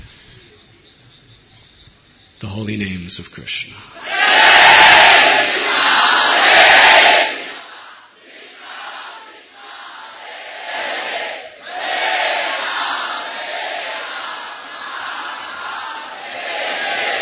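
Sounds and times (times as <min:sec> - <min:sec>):
speech: 0:02.4 - 0:04.5
large crowd of devotees chanting loudly in unison: 0:04.0 - 0:17.1.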